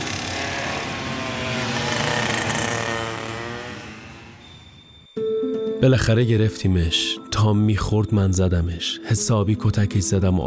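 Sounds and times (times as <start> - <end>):
motorcycle engine revving during a chase: 0.0 - 4.6
speech: 5.8 - 10.4.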